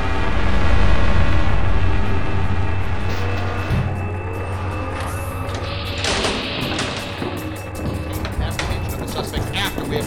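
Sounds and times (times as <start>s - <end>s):
high mechanical whines of hovering vehicle: 0.0s - 10.0s
huge hovering mobile command vehicle engine rumble: 0.0s - 10.0s
clanks of hovering vehicle: 5.4s - 10.0s.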